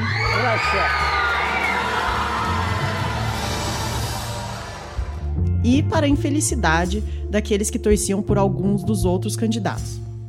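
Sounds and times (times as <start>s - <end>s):
large audience cheering and applauding at host country announcement: 0.0s - 5.6s
speech: 0.6s - 1.2s, 5.6s - 10.1s.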